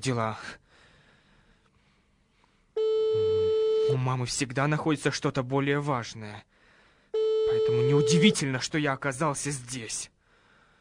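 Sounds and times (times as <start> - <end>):
speech: 0.0 - 0.6, 3.9 - 6.5, 7.1 - 10.1
phone ringing tone: 2.8 - 4.0, 7.2 - 8.4.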